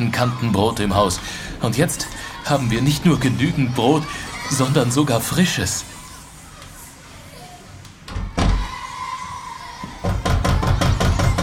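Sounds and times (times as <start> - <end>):
speech: 0.0 - 5.9
knocking on a door: 10.0 - 11.4.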